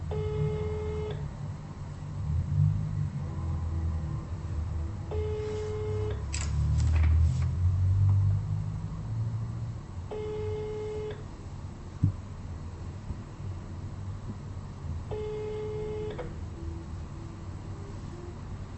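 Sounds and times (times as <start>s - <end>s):
constant low hum and line noise: 0.0s - 18.7s
telephone ringback tone while calling: 0.1s - 1.2s, 5.1s - 6.2s, 10.1s - 11.2s, 15.1s - 16.2s.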